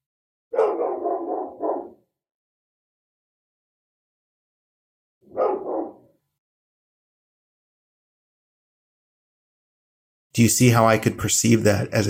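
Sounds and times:
dog barking outside: 0.5 - 2.1, 5.3 - 6.2
speech: 10.4 - 12.0.

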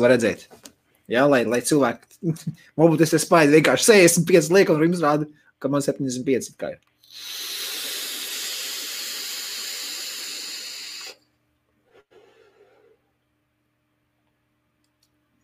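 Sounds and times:
speech: 0.0 - 7.6
vape coil on a mesh RDA firing at 75 with sizzling hiss: 7.0 - 11.3.

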